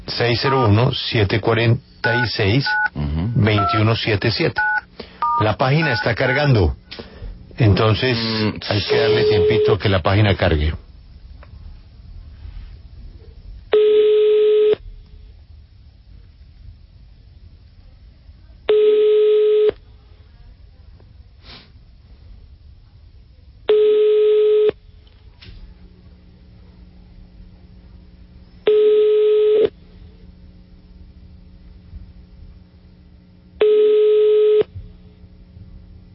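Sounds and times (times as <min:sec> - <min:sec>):
faint low noise: 0:00.0 - 0:36.1
speech: 0:00.2 - 0:04.7, 0:05.4 - 0:10.8
ringback tones of an outgoing call to a Bogotá telephone number: 0:08.8 - 0:09.8, 0:13.7 - 0:14.8, 0:18.7 - 0:19.8, 0:23.7 - 0:24.8, 0:28.7 - 0:29.7, 0:33.6 - 0:34.7.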